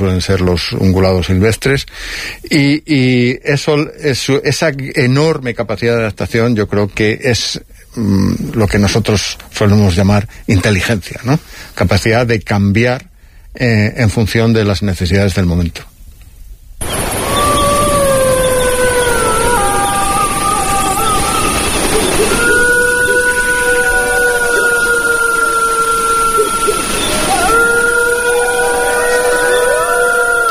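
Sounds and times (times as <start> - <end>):
speech: 0.0 - 15.9
pack of wolves howling in chorus: 16.8 - 30.4.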